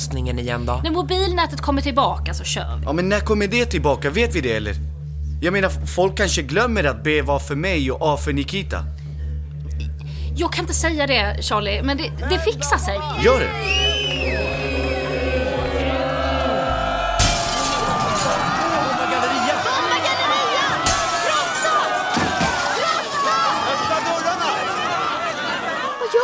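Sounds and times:
speech: 0:00.0 - 0:09.0, 0:10.4 - 0:14.1
low hum: 0:00.0 - 0:22.1
people shouting: 0:12.3 - 0:26.2
noisy agitated crowd: 0:12.6 - 0:26.2
windows smashed with stones: 0:17.2 - 0:19.6, 0:20.6 - 0:23.3
people running: 0:17.8 - 0:26.2.

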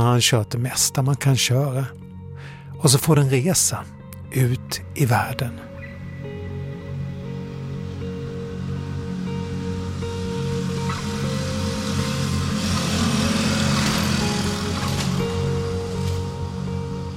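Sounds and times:
speech: 0:00.0 - 0:02.0, 0:02.8 - 0:05.7
small engine of a cargo moped carrying a coffin puttering: 0:08.6 - 0:17.1.

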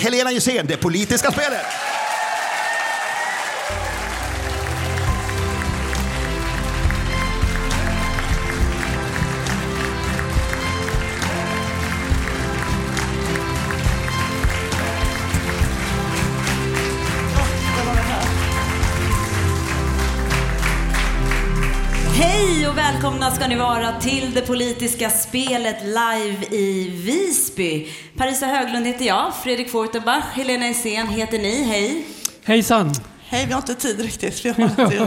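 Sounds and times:
speech: 0:00.0 - 0:02.0, 0:23.4 - 0:35.0
live crowd applause and cheering: 0:01.0 - 0:24.9
laughter: 0:34.4 - 0:35.0.

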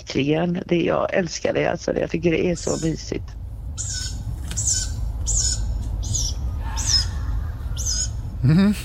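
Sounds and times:
speech: 0:00.0 - 0:04.7, 0:08.4 - 0:08.8
low outdoor rumble: 0:00.0 - 0:08.8
owl calls: 0:02.5 - 0:03.1, 0:03.8 - 0:08.4.

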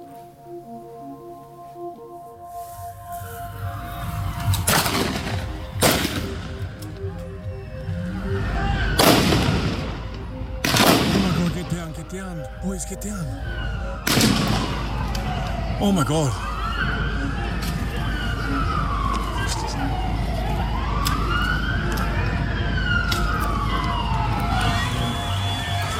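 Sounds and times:
steady low ambient noise: 0:00.0 - 0:25.9
sharp gunshots: 0:04.7 - 0:06.5, 0:09.0 - 0:10.0, 0:10.6 - 0:11.7, 0:14.0 - 0:14.8
speech: 0:12.6 - 0:14.6, 0:15.8 - 0:16.5.

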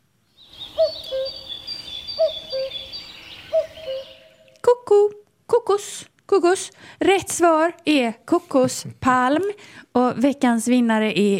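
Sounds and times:
soft constant outdoor hiss: 0:00.0 - 0:11.3
common cuckoo calling two-note descending cu-coo: 0:00.3 - 0:04.7
speech: 0:04.9 - 0:11.3.

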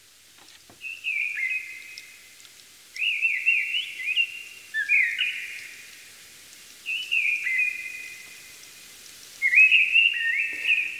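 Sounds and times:
mistle thrush song singing in a forest in Uppland Sweden: 0:00.8 - 0:02.1, 0:03.0 - 0:05.6, 0:06.8 - 0:08.4, 0:09.4 - 0:10.9.

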